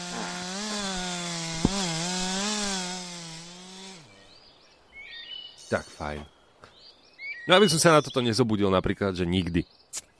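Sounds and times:
neighbour's power saw droning then idling: 0.0 - 4.2
speech: 5.7 - 6.4, 7.5 - 10.0.

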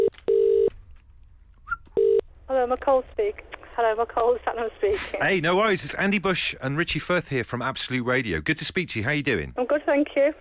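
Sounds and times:
telephone ringing tone on the line: 0.0 - 0.7, 2.0 - 2.2
speech: 2.7 - 10.3.

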